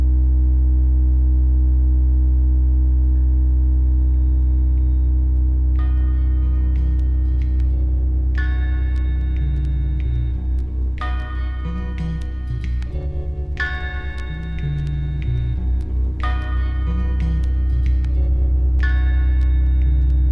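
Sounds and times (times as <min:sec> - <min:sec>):
loud low humming drone of layered deep tones: 0:00.0 - 0:20.3.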